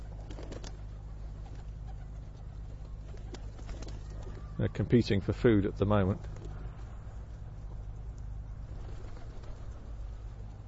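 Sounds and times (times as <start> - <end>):
pigeons fluttering wings: 0.0 - 4.7, 6.2 - 7.0, 8.6 - 10.6
flock of pigeons cooing: 0.0 - 4.9, 8.4 - 10.6
speech: 4.6 - 6.3.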